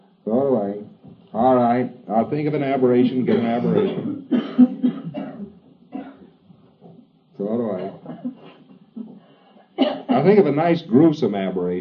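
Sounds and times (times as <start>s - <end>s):
speech: 0.3s - 4.2s, 10.2s - 11.8s
hoarse voiced coughs: 3.3s - 6.4s, 9.8s - 10.2s.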